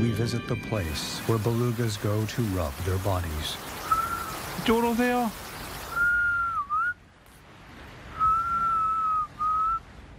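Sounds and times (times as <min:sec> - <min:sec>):
speech: 0:00.1 - 0:03.7, 0:04.6 - 0:05.4
whistle blown to call beluga whales: 0:03.8 - 0:04.5, 0:05.8 - 0:07.0, 0:08.1 - 0:09.8.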